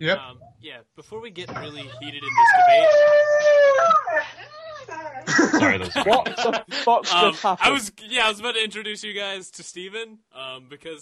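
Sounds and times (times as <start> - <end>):
speech: 0.0 - 10.9
dogs howling and whimpering: 2.2 - 4.7
laughter: 4.2 - 7.7.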